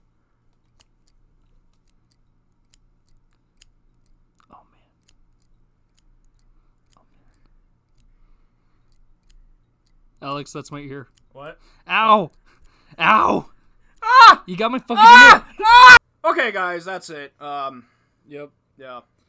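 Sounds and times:
scissors cutting beard hair: 0.4 - 11.6
speech: 10.2 - 12.4, 13.0 - 13.5, 14.4 - 19.1
man muttering: 13.0 - 16.0.

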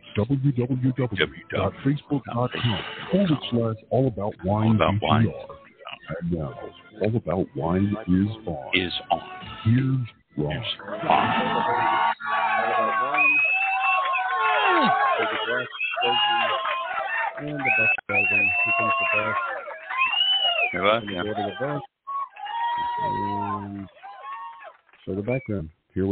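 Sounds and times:
laughter: 0.2 - 3.6, 10.8 - 13.3, 14.5 - 19.7, 20.7 - 21.8
speech: 0.2 - 12.0, 14.9 - 16.8, 17.4 - 19.5, 20.6 - 21.9, 22.8 - 24.0, 25.0 - 26.1
crowd cheering and shouting: 10.8 - 25.4.

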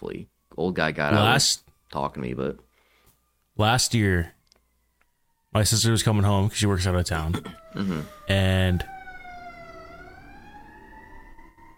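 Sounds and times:
speech: 0.0 - 2.7, 3.6 - 4.4, 5.5 - 8.9
emergency vehicle siren wailing outside: 0.0 - 11.7
low traffic rumble: 5.6 - 11.7.

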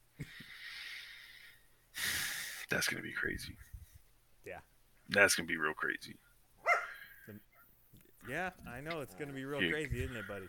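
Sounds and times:
speech: 2.7 - 3.8, 4.5 - 6.3, 7.3 - 7.5, 8.2 - 10.4
dog on a couch barking: 6.6 - 7.0.

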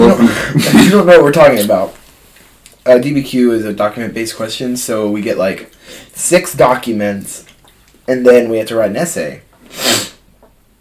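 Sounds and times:
speech: 0.6 - 2.0, 2.8 - 7.5, 8.1 - 10.0
faint breath: 5.8 - 6.1
person sneezing forcefully: 9.7 - 10.2.

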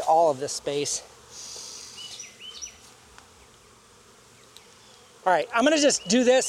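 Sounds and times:
bees buzzing: 0.0 - 6.4
speech: 0.1 - 1.5, 5.3 - 6.4.

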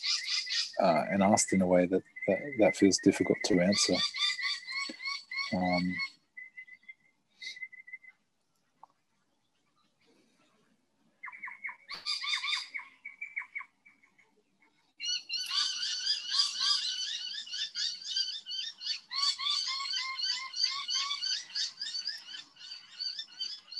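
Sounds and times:
birds squawking and calling: 0.0 - 8.1, 11.2 - 14.2, 15.0 - 23.7
speech: 0.8 - 4.2, 5.5 - 6.1.

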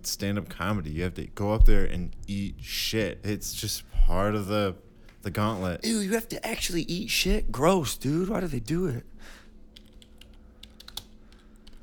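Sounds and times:
speech: 0.0 - 9.4
low steady hum: 0.0 - 11.8
typing on a computer keyboard: 9.8 - 11.8.

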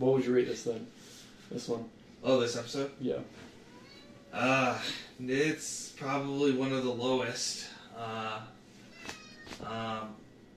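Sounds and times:
speech: 0.0 - 3.5, 4.3 - 8.6, 9.6 - 10.2
cat meowing: 3.6 - 4.5, 8.9 - 9.7.

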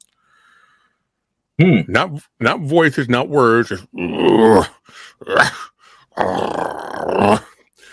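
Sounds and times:
speech: 1.6 - 7.5
harsh guttural growl from a spirit box beside a cornfield: 3.9 - 7.5.

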